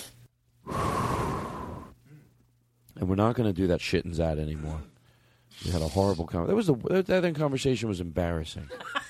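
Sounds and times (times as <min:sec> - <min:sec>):
deep human breaths with long inhale and slow exhale: 0:00.6 - 0:02.4, 0:04.8 - 0:05.8
speech: 0:03.0 - 0:04.9, 0:05.6 - 0:09.0.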